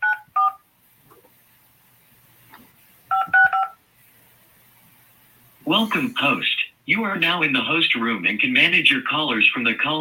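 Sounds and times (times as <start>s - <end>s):
telephone keypad tones entering a PIN on a call-in line: 3.1s - 3.8s
speech: 5.7s - 9.9s.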